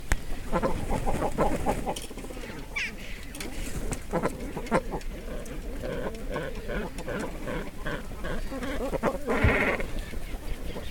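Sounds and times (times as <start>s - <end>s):
cormorants croaking and grunting in a group inside the nest: 0.3s - 10.9s.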